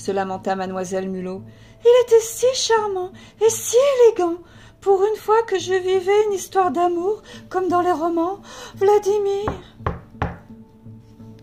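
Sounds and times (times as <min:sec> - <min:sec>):
speech: 0:00.0 - 0:09.9
firm knocks on a door: 0:09.4 - 0:10.5.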